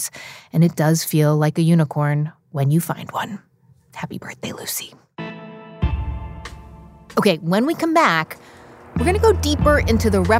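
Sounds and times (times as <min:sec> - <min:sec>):
speech: 0:00.0 - 0:05.1, 0:07.2 - 0:10.3
cryptocurrency mining power equipment electrical hum: 0:07.1 - 0:10.3.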